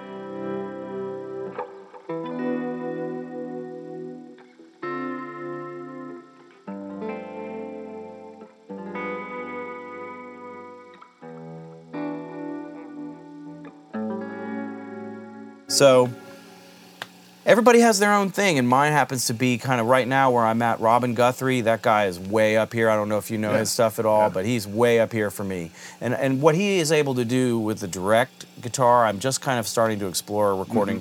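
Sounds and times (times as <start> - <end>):
slow mournful hymn-like melody of sustained chords with heavy reverb: 0.0 - 16.4
speech: 15.8 - 16.2, 17.5 - 31.0.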